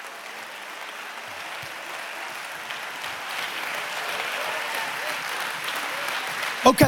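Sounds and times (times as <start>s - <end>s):
audience at a worship service clapping hands: 0.0s - 6.8s
speech: 6.6s - 6.8s.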